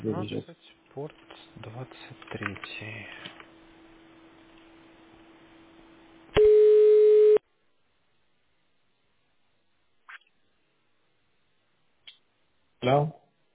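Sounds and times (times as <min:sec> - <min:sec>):
speech: 0:00.0 - 0:02.0
loud telephone tone: 0:06.4 - 0:07.4.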